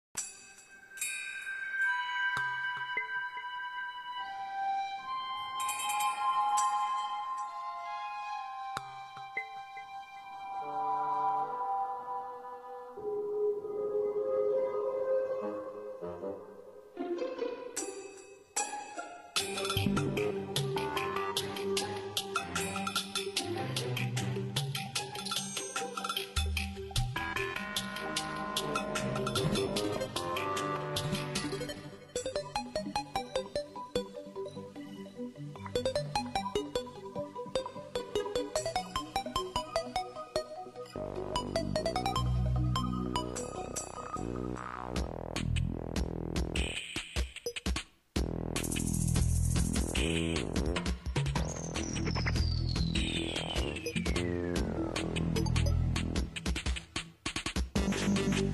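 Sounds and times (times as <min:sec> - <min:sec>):
desert style music: 0:00.2 - 0:58.5.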